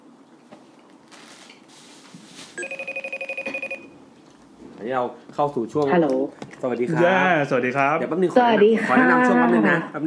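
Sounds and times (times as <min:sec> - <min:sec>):
faint rustle: 0:00.5 - 0:02.8
electronic telephone ringing for a live call: 0:02.6 - 0:04.0
speech: 0:04.8 - 0:10.0.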